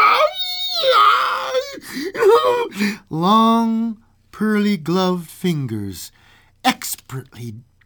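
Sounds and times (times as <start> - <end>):
newborn baby crying: 0.0 - 2.8
speech: 2.3 - 7.7.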